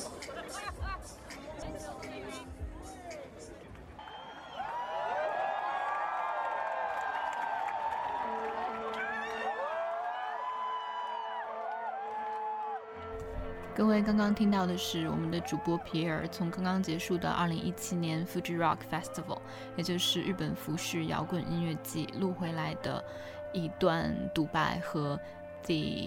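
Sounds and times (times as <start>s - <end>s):
festival crowd chatter before an indie band's set: 0.0s - 4.0s
festival crowd cheering and whooping before an indie band's set: 4.0s - 13.1s
speech: 13.8s - 26.0s.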